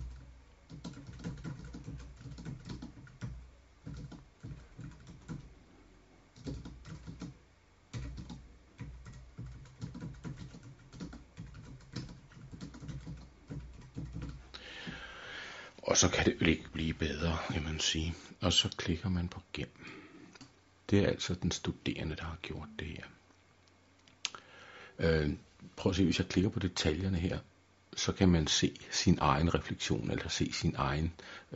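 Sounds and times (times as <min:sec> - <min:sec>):
typing on a computer keyboard: 0:00.0 - 0:05.5, 0:06.4 - 0:14.4
speech: 0:15.9 - 0:20.0, 0:20.9 - 0:23.2, 0:25.0 - 0:31.5.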